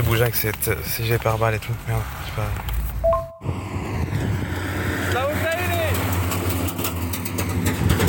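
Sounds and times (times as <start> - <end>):
road noise: 0.0 - 8.0
speech: 0.1 - 2.8
heavy military rocket-launcher truck engine drone: 2.8 - 7.7.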